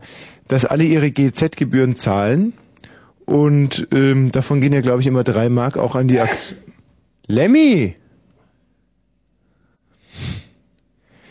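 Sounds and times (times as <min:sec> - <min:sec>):
speech: 0:00.5 - 0:02.6, 0:03.3 - 0:06.7, 0:07.3 - 0:08.0
person sneezing: 0:06.2 - 0:06.8.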